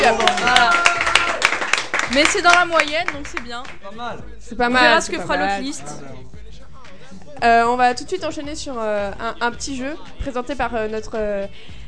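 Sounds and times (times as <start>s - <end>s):
small group clapping: 0.0s - 4.0s
speech: 2.1s - 6.4s, 7.4s - 11.8s.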